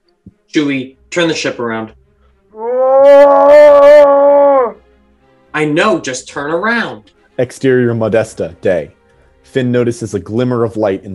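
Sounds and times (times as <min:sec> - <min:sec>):
speech: 0:00.5 - 0:02.0, 0:03.0 - 0:04.1, 0:05.6 - 0:11.1
Wookiee roaring aboard a spaceship at light speed: 0:02.6 - 0:04.8.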